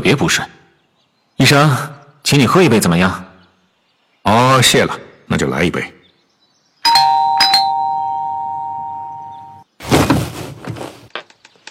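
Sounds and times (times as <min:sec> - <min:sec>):
speech: 0:00.0 - 0:00.6, 0:01.4 - 0:03.2, 0:04.2 - 0:06.0
pressed bell ringing: 0:06.9 - 0:09.6
heavy thump and rustling of someone dropping into a chair: 0:09.8 - 0:11.1.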